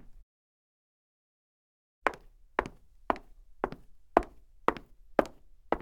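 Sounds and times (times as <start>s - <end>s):
high heels footsteps on wood parquet: 2.1s - 5.7s.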